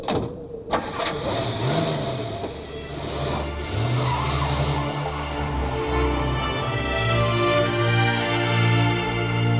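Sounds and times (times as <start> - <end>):
police car tire skid: 0.7 - 7.3
police car engine starting and revving hard: 0.8 - 9.5.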